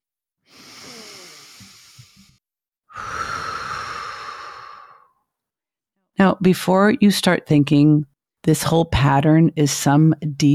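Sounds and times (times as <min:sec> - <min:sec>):
deep breaths: 0:00.4 - 0:05.3
speech: 0:06.4 - 0:10.5.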